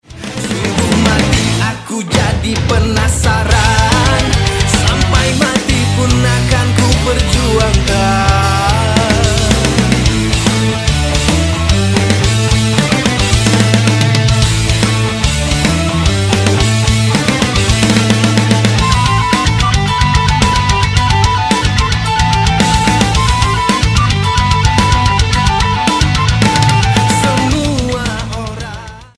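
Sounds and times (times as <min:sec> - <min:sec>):
rock version ringtone: 0:00.1 - 0:29.1.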